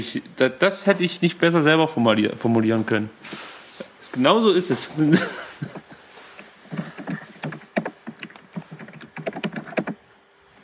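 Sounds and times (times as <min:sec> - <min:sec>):
speech: 0:00.0 - 0:03.5, 0:04.1 - 0:05.9
laughter: 0:05.0 - 0:06.0
typing on a computer keyboard: 0:06.7 - 0:10.0.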